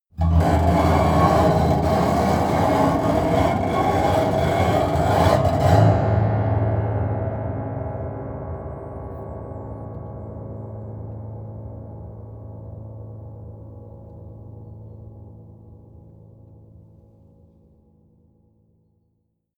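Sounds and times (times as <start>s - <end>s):
bowed broken piano string low and slow: 0.1s - 14.4s.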